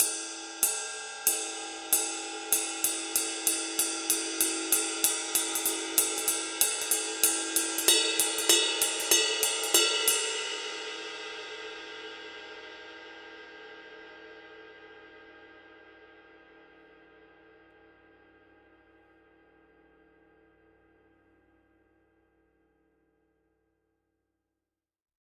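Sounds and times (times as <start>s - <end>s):
power ride cymbal pattern: 0.0s - 11.8s.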